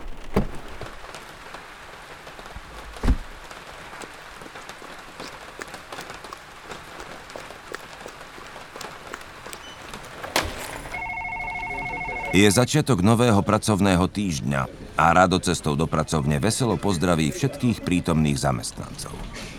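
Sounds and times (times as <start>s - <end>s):
steady rain pattering: 0.0s - 11.0s
phone ringing: 10.9s - 12.7s
speech: 12.4s - 19.5s.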